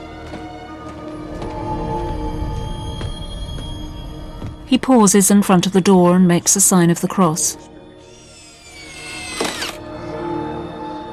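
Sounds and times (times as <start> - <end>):
speech: 4.7 - 7.7
power tool driving screws into porch windows: 8.0 - 9.8.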